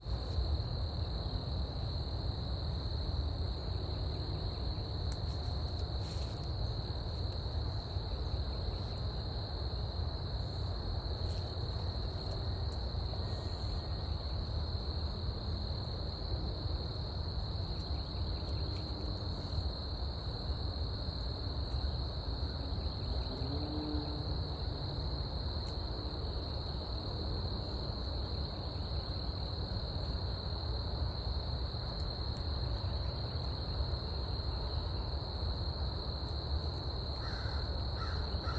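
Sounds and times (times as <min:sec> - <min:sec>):
crickets chirping: 0:00.0 - 0:38.5
crows cawing: 0:37.2 - 0:38.5.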